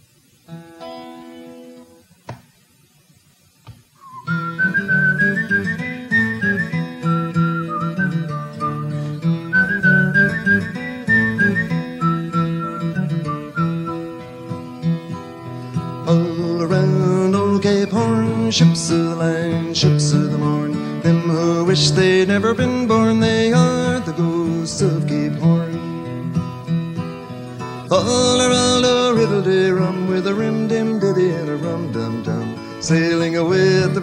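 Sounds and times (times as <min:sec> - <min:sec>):
person whistling a lilting melody imitating a tin whistle: 0:04.0 - 0:14.2
full steady instrumental backing of a theme song: 0:04.0 - 0:34.0
speech: 0:21.8 - 0:23.0.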